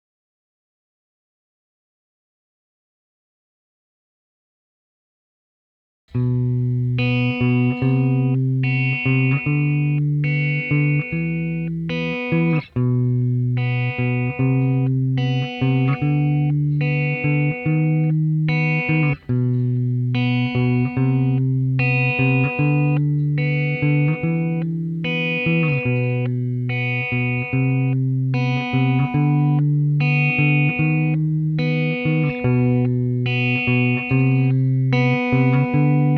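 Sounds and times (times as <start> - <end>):
guitar: 6.1 - 36.1.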